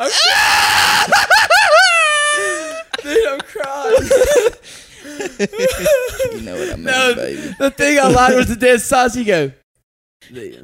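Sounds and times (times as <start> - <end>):
man screaming: 0.0 - 2.8, 6.3 - 8.4
laughter: 0.9 - 8.8
speech: 5.4 - 9.6, 10.2 - 10.6.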